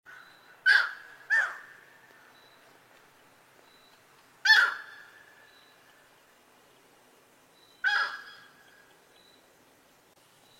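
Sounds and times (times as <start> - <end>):
yellow-crowned night heron giving harsh squawks: 0.6 - 1.8, 4.4 - 5.1, 7.8 - 8.5.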